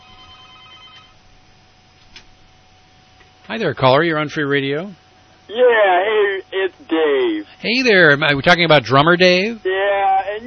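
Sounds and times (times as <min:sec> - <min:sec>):
telephone ringing for an incoming call: 0:00.0 - 0:01.2
low hiss: 0:00.0 - 0:10.4
speech: 0:03.5 - 0:09.7.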